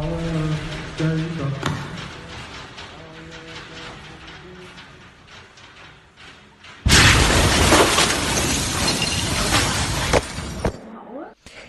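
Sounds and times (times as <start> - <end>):
roaring crashing noise: 0.0 - 10.7
huge port explosion heard from inside a church: 6.8 - 10.6
shattering glass: 6.9 - 10.8.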